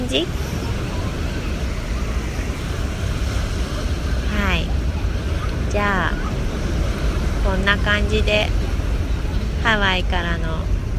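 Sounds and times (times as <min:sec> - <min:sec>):
ocean waves on the sea in Hawaii: 0:00.0 - 0:10.9
speech: 0:00.1 - 0:00.6, 0:05.7 - 0:06.3, 0:07.4 - 0:08.6, 0:09.6 - 0:10.8.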